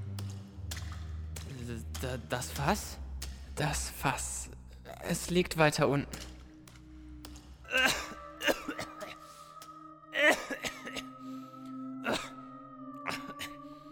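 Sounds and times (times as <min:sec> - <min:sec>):
steady low hum: 0:00.0 - 0:13.9
speech: 0:01.7 - 0:03.0, 0:03.6 - 0:06.3
harsh coughs and throat-clearing bursts: 0:07.7 - 0:09.4, 0:10.2 - 0:11.2, 0:12.0 - 0:12.4.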